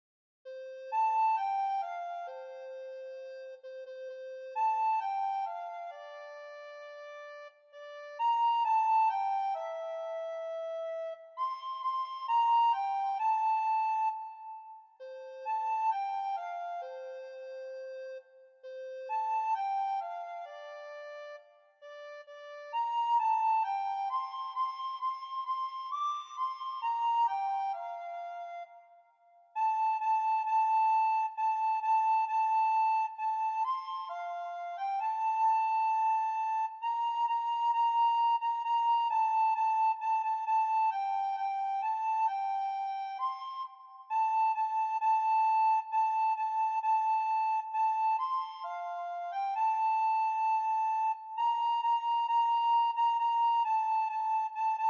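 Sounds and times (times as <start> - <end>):
solo soprano recorder: 0.5 - 54.8.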